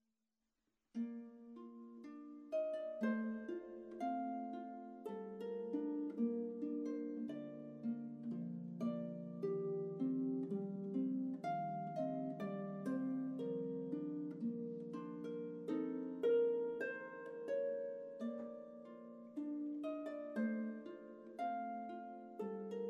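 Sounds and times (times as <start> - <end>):
harp: 0.9 - 22.8.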